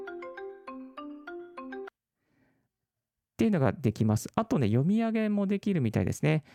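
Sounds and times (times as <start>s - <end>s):
electronic alarm melody from a countdown timer app: 0.0s - 1.9s
speech: 3.4s - 6.5s.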